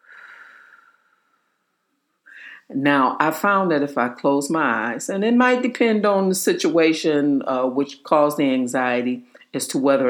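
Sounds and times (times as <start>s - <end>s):
deep breath during a slow breathing exercise: 0.0s - 2.7s
speech: 2.7s - 10.0s.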